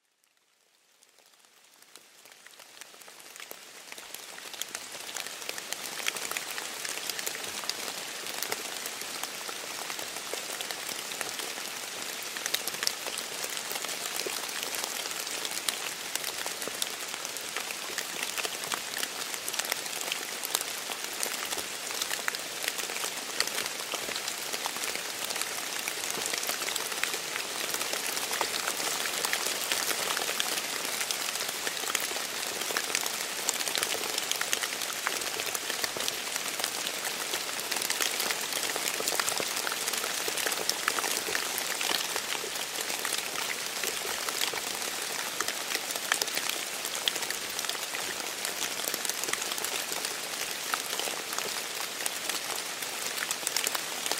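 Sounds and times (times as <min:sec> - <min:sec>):
rain in a forest: 0:00.0 - 0:54.1.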